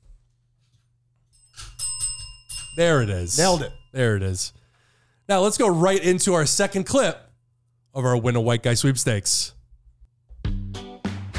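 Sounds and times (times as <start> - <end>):
bell ringing: 1.4 - 4.6
speech: 2.8 - 4.6, 5.3 - 7.2, 7.9 - 9.6.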